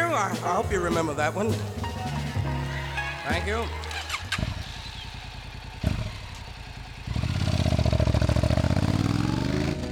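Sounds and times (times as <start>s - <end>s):
speech: 0.2s - 1.9s, 3.3s - 3.9s
motorcycle engine cranking, starting and idling: 2.1s - 9.9s.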